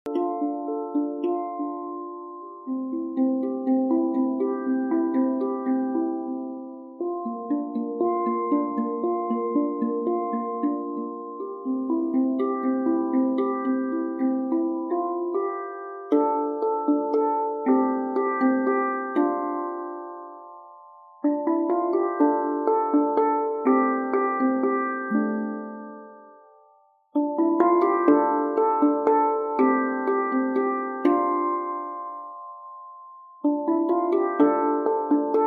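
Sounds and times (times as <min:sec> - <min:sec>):
ten-note handpan in D minor: 0:00.0 - 0:35.4.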